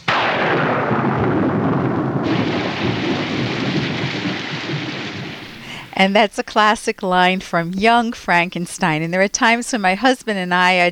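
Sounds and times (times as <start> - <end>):
thunder rumbling: 0.0 - 6.2
heavy rain pouring: 2.2 - 6.0
speech: 6.0 - 10.8.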